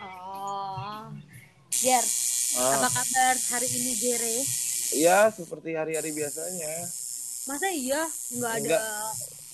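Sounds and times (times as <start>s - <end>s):
two people chatting: 0.0s - 1.1s, 1.8s - 4.4s, 5.0s - 6.9s, 7.5s - 9.2s
tattoo machine buzzing: 1.7s - 9.5s
speech: 1.8s - 9.4s.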